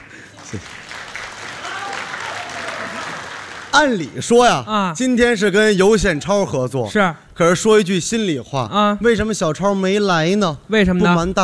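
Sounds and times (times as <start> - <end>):
sparse audience applause at a live traditional crosstalk comedy performance: 0.0 - 4.1
speech: 0.4 - 0.8, 3.7 - 11.4.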